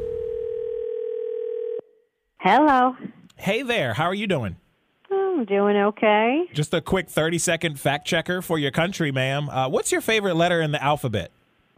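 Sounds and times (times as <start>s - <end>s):
steady telephone tone: 0.0s - 2.1s
speech: 2.4s - 4.6s, 5.4s - 11.4s.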